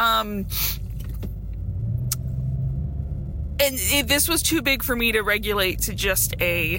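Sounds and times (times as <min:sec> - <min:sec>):
low road rumble in a car cabin while driving: 0:00.0 - 0:06.7
speech: 0:00.2 - 0:00.8, 0:03.6 - 0:06.7.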